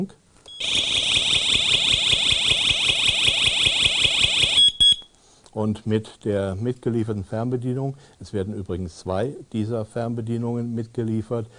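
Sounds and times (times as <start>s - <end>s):
speech: 0.0s - 0.8s, 5.6s - 11.5s
electronic alarm triggered by SOS button: 0.5s - 5.1s.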